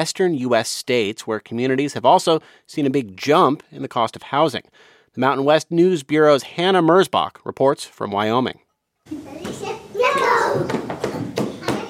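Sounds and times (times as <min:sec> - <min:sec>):
speech: 0:00.0 - 0:10.8
toddlers chattering and squealing at an indoor play center: 0:09.1 - 0:11.8
colorful blocks and balls thrown around an indoor play center: 0:09.4 - 0:11.8.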